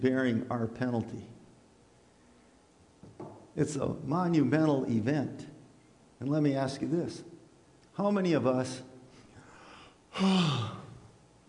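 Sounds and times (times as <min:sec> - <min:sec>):
speech: 0:00.0 - 0:01.4, 0:03.6 - 0:05.5, 0:06.2 - 0:07.3, 0:08.0 - 0:08.9, 0:10.2 - 0:10.8
person yawning with a breathy voiced groan: 0:10.1 - 0:11.1.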